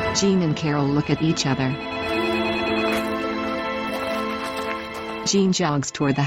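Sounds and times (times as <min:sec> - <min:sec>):
speech: 0:00.2 - 0:02.0, 0:05.3 - 0:06.2
telephone ringing with an electronic trill: 0:01.1 - 0:05.0.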